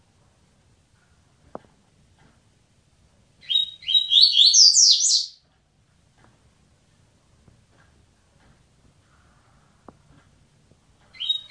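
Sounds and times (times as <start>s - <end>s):
double-collared seedeater song: 3.4s - 5.4s, 11.0s - 11.4s.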